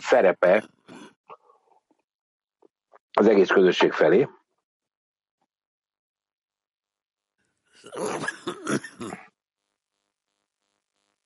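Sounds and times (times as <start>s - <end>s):
speech: 0.0s - 0.8s, 3.2s - 4.4s, 7.8s - 9.2s
person coughing: 7.9s - 9.2s
person clearing throat: 7.9s - 9.3s.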